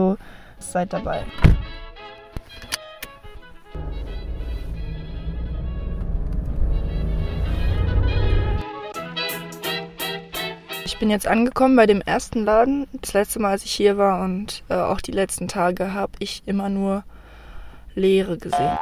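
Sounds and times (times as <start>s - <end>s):
speech: 0.0s - 1.8s, 11.0s - 17.1s, 18.0s - 18.8s
car engine rumbling low and steady: 3.7s - 8.6s.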